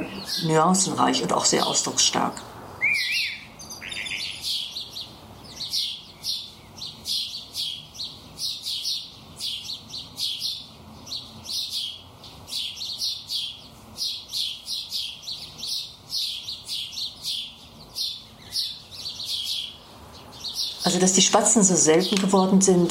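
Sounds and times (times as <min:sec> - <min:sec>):
repetitive bird chirping: 0:00.0 - 0:22.8
speech: 0:00.3 - 0:03.1, 0:21.0 - 0:22.8.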